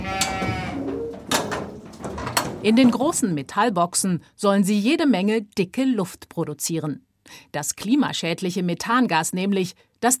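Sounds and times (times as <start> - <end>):
sheep bleating in a crowded pen at a research farm: 0.0 - 0.9
speech: 2.6 - 10.1.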